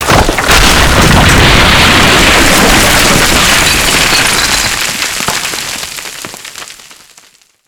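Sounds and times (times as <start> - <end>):
building crumbling: 0.0 - 7.6.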